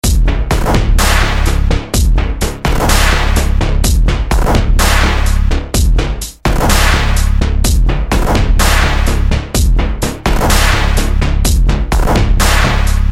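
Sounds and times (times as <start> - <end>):
loop: 0.0 - 13.0.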